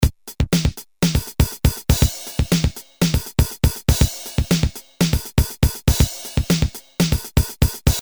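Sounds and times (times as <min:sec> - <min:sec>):
fast rhythmic drum loop: 0:00.0 - 0:07.9.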